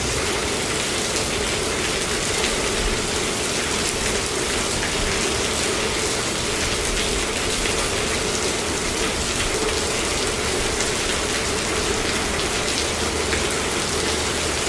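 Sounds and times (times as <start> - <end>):
rain pelting a garage roof: 0.0 - 14.6.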